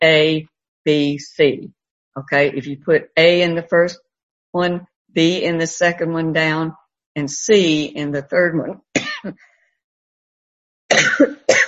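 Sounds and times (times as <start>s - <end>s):
speech: 0.0s - 9.5s, 10.9s - 11.6s
person coughing: 9.0s - 9.4s, 10.9s - 11.6s.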